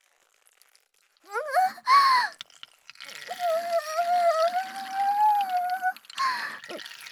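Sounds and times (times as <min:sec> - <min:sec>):
sustained high wavering vocal tone: 0:01.3 - 0:02.3, 0:03.3 - 0:06.8
steady stream of urine splashing onto a man's face: 0:01.8 - 0:07.1.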